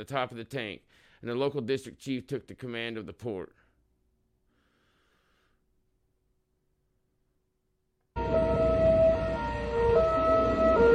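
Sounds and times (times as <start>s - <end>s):
speech: 0.0s - 3.6s
siren wailing: 8.2s - 10.9s.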